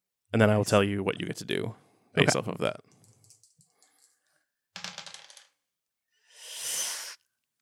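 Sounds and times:
speech: 0.3s - 2.9s
dice rolled in a tabletop role-playing game clattering across a hard surface: 3.0s - 4.2s, 4.8s - 5.6s.

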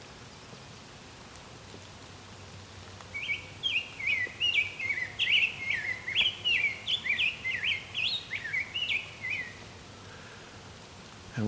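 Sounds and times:
rose-breasted grosbeak singing: 3.1s - 9.7s.

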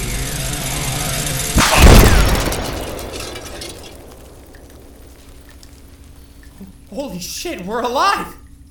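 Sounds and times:
steady low hum: 0.0s - 8.6s
sharp gunshot crack: 1.6s - 5.4s
rumbling explosion: 1.6s - 6.1s
debris clatter: 1.6s - 6.5s
speech: 7.0s - 8.4s.

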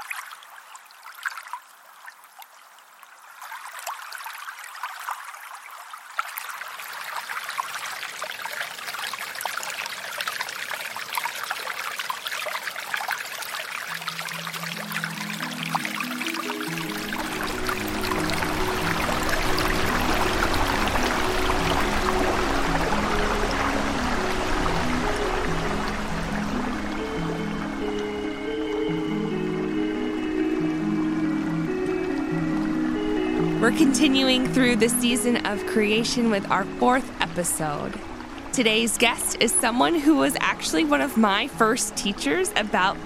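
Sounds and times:
river water rushing and trickling: 0.0s - 43.0s
low sustained musical tones: 12.8s - 43.0s
speech: 33.7s - 43.0s.

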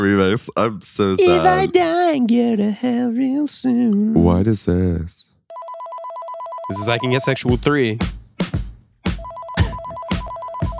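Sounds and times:
speech: 0.0s - 5.3s, 6.7s - 8.2s
phone ringing with a rapid warbling two-tone electronic trill: 5.5s - 7.5s, 9.2s - 10.7s
music with loud regular thumping beats: 7.3s - 10.7s.

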